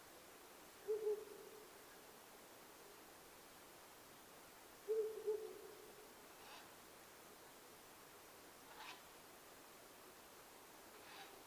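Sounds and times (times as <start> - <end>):
constant hiss: 0.0 - 11.4
owl hooting: 0.8 - 1.6, 4.9 - 5.8.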